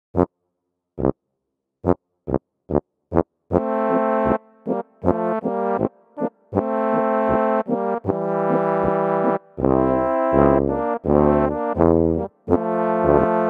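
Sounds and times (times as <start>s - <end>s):
F tuba: 0.1s - 0.3s, 1.8s - 13.4s
tenor horn: 3.5s - 13.4s.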